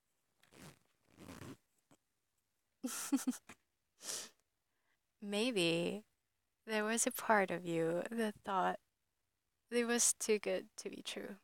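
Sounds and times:
trouser zipper being unzipped: 0.4s - 1.6s
faint trouser zipper click: 0.4s - 2.0s
speech: 2.8s - 4.2s, 5.2s - 8.8s, 9.7s - 11.4s.

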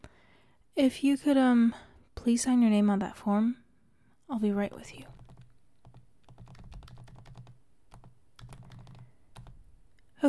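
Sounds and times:
speech: 0.8s - 3.6s, 4.3s - 5.2s
typing on a computer keyboard in a sick bay: 5.1s - 9.7s.

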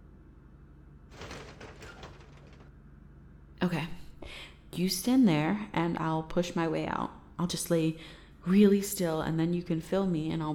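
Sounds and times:
door swinging shut with a soft thud and brief rattle: 1.1s - 2.8s
speech: 3.6s - 10.5s.

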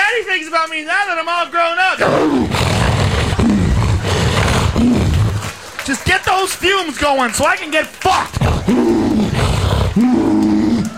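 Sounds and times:
speech: 0.6s - 2.4s, 6.6s - 10.3s
tiger roaring: 2.0s - 5.5s, 8.4s - 10.9s.

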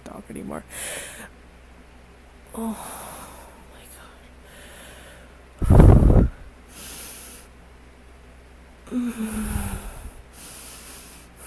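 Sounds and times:
speech: 0.3s - 1.3s, 2.5s - 3.1s
heavy breathing into a microphone: 4.5s - 7.5s, 9.0s - 11.4s
low voiced groan: 8.9s - 10.2s.

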